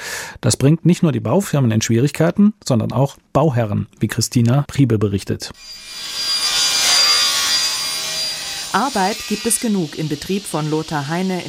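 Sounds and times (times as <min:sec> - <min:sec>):
speech: 0:00.4 - 0:06.3, 0:08.7 - 0:11.4
saws cutting wooden panels in a carpentry workshop: 0:05.6 - 0:11.4.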